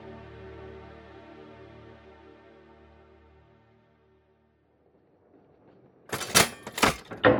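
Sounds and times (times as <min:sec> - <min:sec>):
sharp mechanical clanks: 0:06.1 - 0:07.2.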